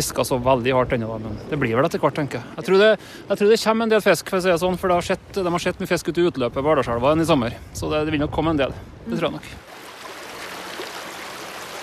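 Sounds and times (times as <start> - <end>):
speech: 0.0 - 9.7
flowing rising river water rushing: 9.1 - 11.8.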